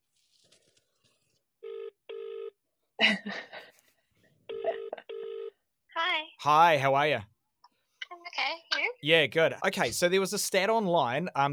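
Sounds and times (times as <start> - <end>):
rustling: 0.0 - 1.5
buzzy double-ring tones of a phone call over a speakerphone: 1.6 - 2.6, 4.5 - 5.6
speech: 3.0 - 3.6, 6.4 - 7.3, 9.0 - 11.5.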